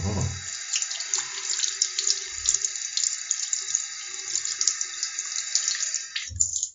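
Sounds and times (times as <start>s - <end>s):
faint knocks against the basin: 0.0s - 0.4s
tap running in a bathroom: 0.0s - 6.7s.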